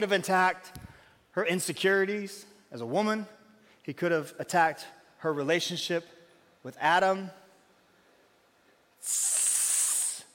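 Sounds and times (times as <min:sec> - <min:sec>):
speech: 0:00.0 - 0:00.8, 0:01.4 - 0:07.4, 0:09.0 - 0:09.4
person imitating a snake hiss: 0:09.0 - 0:10.3.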